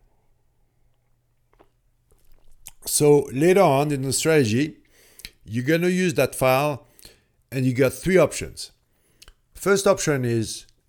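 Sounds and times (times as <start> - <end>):
low hum: 0.0 - 10.8
person sipping a drink: 1.5 - 2.8
speech: 2.8 - 4.8, 5.5 - 6.9, 7.5 - 8.8, 9.6 - 10.7.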